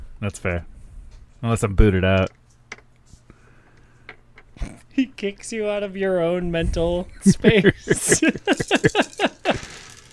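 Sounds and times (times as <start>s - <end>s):
speech: 0.2s - 0.8s, 1.4s - 2.4s, 5.0s - 9.6s
laughter: 7.2s - 9.8s
dice clattering across a hard tabletop: 8.5s - 10.1s.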